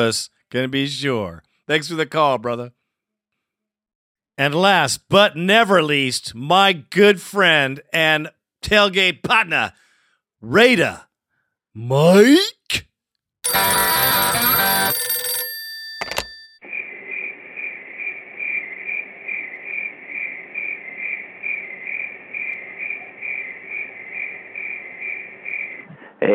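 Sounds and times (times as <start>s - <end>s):
speech: 0.0s - 2.8s, 4.4s - 9.8s, 10.4s - 11.1s, 11.8s - 14.2s, 26.2s - 26.3s
crickets chirping: 16.8s - 25.9s.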